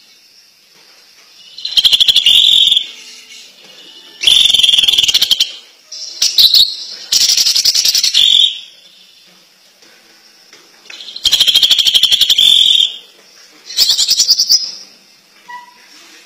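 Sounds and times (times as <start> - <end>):
greater green leafbird singing: 1.4 - 3.5, 4.2 - 9.3, 10.9 - 13.0, 13.7 - 14.9.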